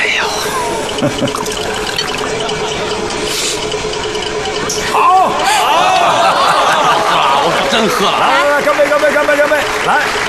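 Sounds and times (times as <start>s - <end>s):
liquor pouring into a cup during a banquet toast: 0.3s - 4.4s
laughter: 0.5s - 3.8s, 4.4s - 10.2s
speech: 1.0s - 1.7s, 7.8s - 10.2s.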